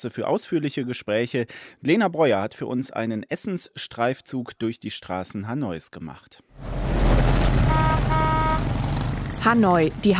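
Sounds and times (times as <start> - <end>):
speech: 0.0 - 6.9, 9.4 - 10.1
mopeds and motor traffic in a Hanoi street: 6.7 - 10.1
vehicle horn tones: 7.6 - 8.8.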